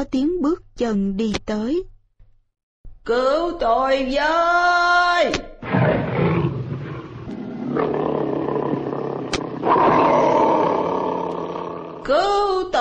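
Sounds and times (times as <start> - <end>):
speech: 0.0 - 1.9, 3.1 - 5.5, 12.1 - 12.8
tiger roaring trapped at the bottom of a well, story sound effect: 5.6 - 12.2
sharp click: 9.3 - 9.6.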